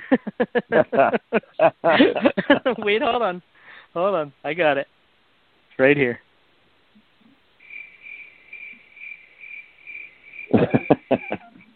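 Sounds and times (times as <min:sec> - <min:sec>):
laughter: 0:00.0 - 0:03.2, 0:10.5 - 0:11.7
speech: 0:00.1 - 0:05.0, 0:05.8 - 0:06.3
cricket chirping: 0:07.0 - 0:11.7
loud coughs: 0:10.5 - 0:11.6.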